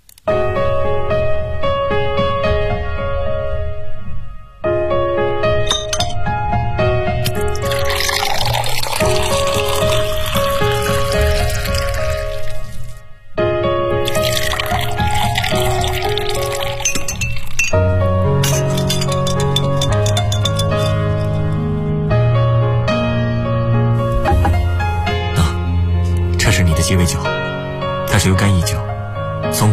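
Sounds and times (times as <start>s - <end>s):
steady tonal music: 0.1s - 29.7s
coconut liqueur and ice being poured and mixed into a cocktail: 7.2s - 13.0s, 14.0s - 21.6s
faint clinks: 16.8s - 21.6s.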